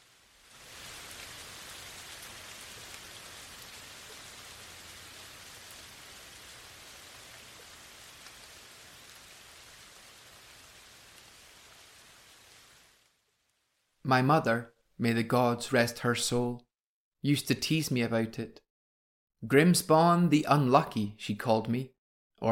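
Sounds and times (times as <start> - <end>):
steady rain falling from storm clouds on scorched land: 0.0 - 14.0
speech: 14.1 - 18.6, 19.4 - 22.5.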